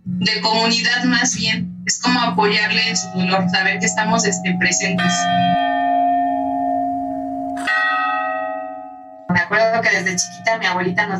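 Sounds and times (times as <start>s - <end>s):
speech: 0.2s - 5.6s, 9.8s - 11.1s
church bell ringing: 2.3s - 11.1s.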